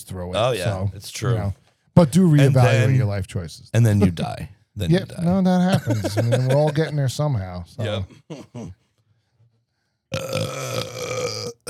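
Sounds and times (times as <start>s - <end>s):
speech: 0.1s - 8.8s, 10.1s - 11.6s
laughter: 5.6s - 7.2s
long loud guttural burp: 10.1s - 11.6s.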